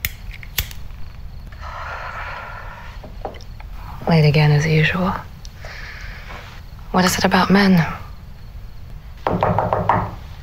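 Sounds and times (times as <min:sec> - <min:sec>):
speech: 0:04.1 - 0:05.3, 0:06.9 - 0:08.0
knocking on the wooden door of a room in a house: 0:09.2 - 0:10.2.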